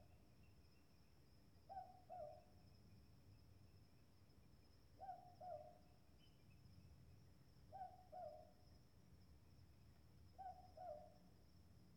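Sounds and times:
Southern boobook hooting: 0:01.7 - 0:02.4, 0:05.0 - 0:05.7, 0:07.7 - 0:08.4, 0:10.4 - 0:11.1.

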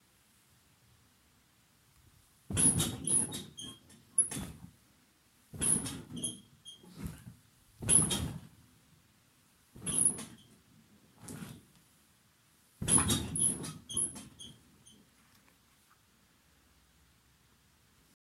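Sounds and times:
bed squeaking: 0:02.5 - 0:04.7, 0:05.6 - 0:08.6, 0:09.8 - 0:10.6, 0:11.2 - 0:11.7, 0:12.8 - 0:15.0.

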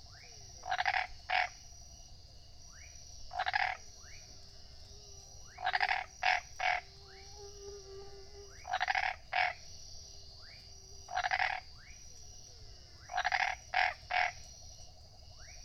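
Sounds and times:
faint high-pitched hum: 0:00.0 - 0:15.6
tree frog grating croaks: 0:00.6 - 0:01.6, 0:03.3 - 0:04.2, 0:05.5 - 0:06.9, 0:08.6 - 0:09.6, 0:11.1 - 0:11.9, 0:13.0 - 0:14.5.

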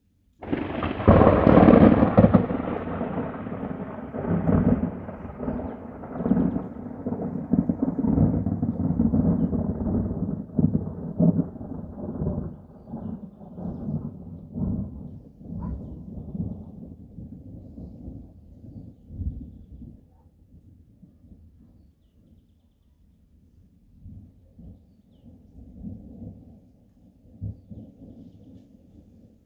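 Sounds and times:
lightning thunder strike in a rainless storm: 0:00.4 - 0:15.0.

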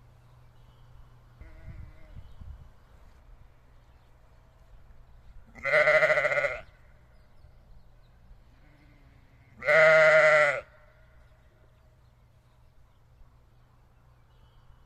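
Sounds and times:
low background hum: 0:00.0 - 0:14.8
sheep bleating: 0:05.5 - 0:06.8, 0:08.6 - 0:11.0.

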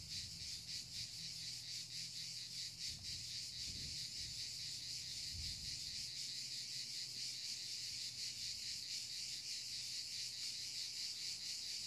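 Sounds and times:
crickets in a high-pitched shimmering chorus in the mountains: 0:00.0 - 0:11.8.

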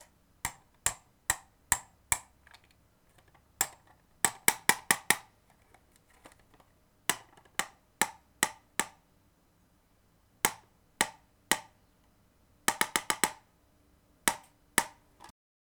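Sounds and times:
hammering a nail: 0:00.5 - 0:02.4, 0:03.6 - 0:05.2, 0:07.1 - 0:09.0, 0:10.5 - 0:11.8, 0:12.7 - 0:13.4, 0:14.3 - 0:15.0.

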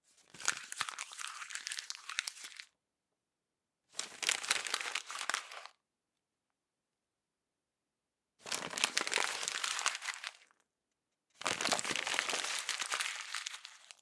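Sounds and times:
paper being crumpled up: 0:00.3 - 0:02.6, 0:04.0 - 0:05.7, 0:08.4 - 0:10.5, 0:11.4 - 0:14.0.

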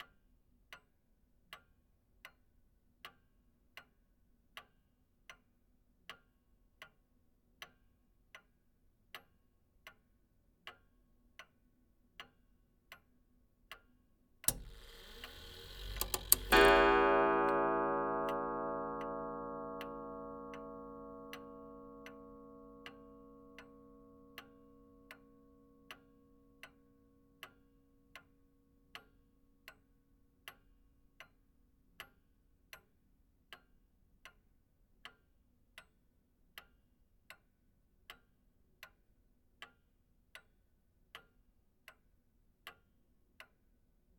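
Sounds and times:
antique clock ticking: 0:14.4 - 0:25.2.

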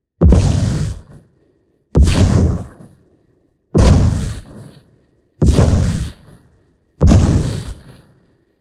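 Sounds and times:
magic fire impact: 0:00.2 - 0:01.2, 0:02.0 - 0:02.9, 0:03.8 - 0:04.7, 0:05.4 - 0:06.2, 0:07.0 - 0:08.0.

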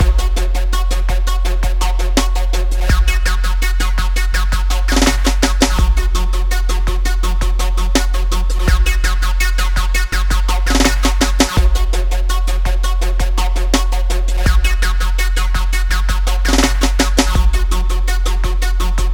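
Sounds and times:
acid music loop: 0:00.0 - 0:19.1.

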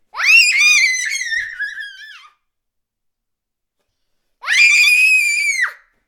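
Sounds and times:
small girls screaming: 0:00.1 - 0:02.4, 0:04.4 - 0:05.8.

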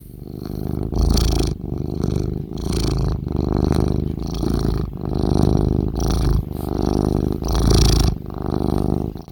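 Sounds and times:
cat purring: 0:00.0 - 0:09.2.

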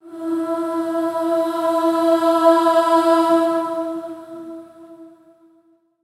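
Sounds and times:
female voices singing in unison on E: 0:00.0 - 0:05.4.

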